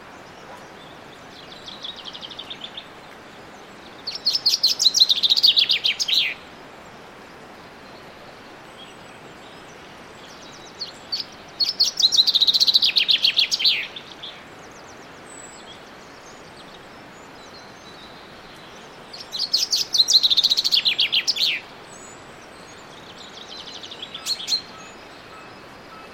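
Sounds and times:
Common chaffinch Fringilla coelebs singing: 3.8 - 6.5, 8.8 - 26.1.

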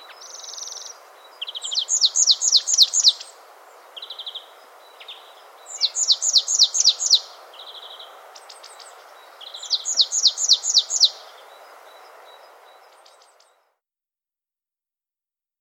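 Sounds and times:
Poecile palustris marsh tit calling: 0.0 - 3.4, 4.0 - 11.3
continuous background hiss: 0.0 - 13.7.

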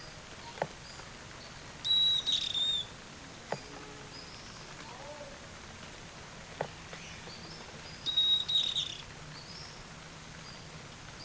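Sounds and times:
bird high whistle call: 1.8 - 2.9, 8.0 - 9.0.

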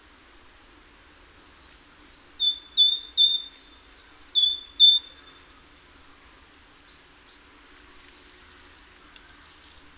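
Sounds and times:
Great tit Parus major whistling two-note phrases: 2.2 - 5.3.

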